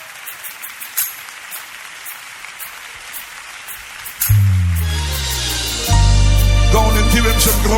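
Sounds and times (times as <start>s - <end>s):
large crowd applauding in a room: 0.0s - 5.5s
loud sustained musical chord: 4.3s - 7.7s
speech: 7.2s - 7.7s.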